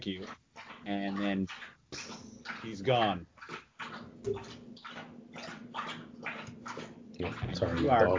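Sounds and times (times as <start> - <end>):
speech: 0.0 - 3.3, 4.2 - 4.6, 7.6 - 8.1
dog lapping water: 0.0 - 8.1
low hum: 0.0 - 8.1.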